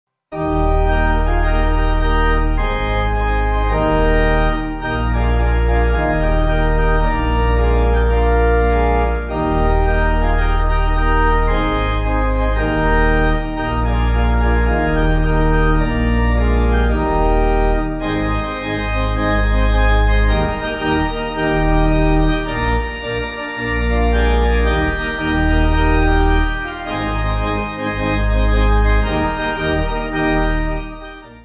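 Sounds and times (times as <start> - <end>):
pipe organ piece: 0.3 - 31.4.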